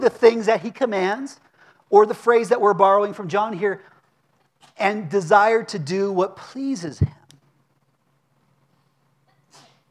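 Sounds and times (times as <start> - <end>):
speech: 0.0 - 3.9, 4.7 - 7.2
low steady hum: 0.0 - 9.8
person sneezing: 9.3 - 9.8.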